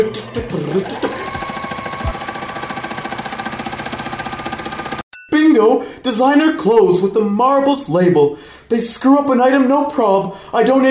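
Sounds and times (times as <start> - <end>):
speech: 0.0 - 1.1, 6.0 - 10.8
sewing machines running: 0.0 - 5.0.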